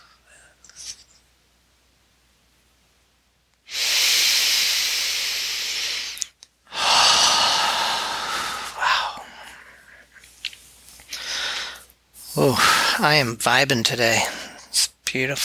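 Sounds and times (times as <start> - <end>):
slow exhaled breaths during a guided breathing exercise: 3.7 - 13.0
speech: 12.4 - 14.4, 15.1 - 15.4.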